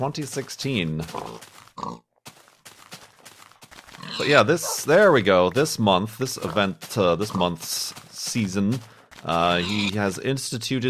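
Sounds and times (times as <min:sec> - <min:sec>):
speech: 0:00.0 - 0:02.1, 0:04.2 - 0:10.8
pig grunting and oinking: 0:01.1 - 0:02.1, 0:03.9 - 0:05.0, 0:06.4 - 0:07.6, 0:09.4 - 0:10.0.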